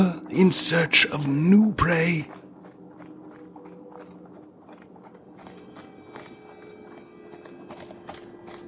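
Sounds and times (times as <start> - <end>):
speech: 0.0 - 2.4
continuous outdoor forest ambience: 0.0 - 8.6
faint tonal hum: 0.0 - 8.6
horse hooves clip-clopping at a walking pace through a forest: 0.4 - 8.6.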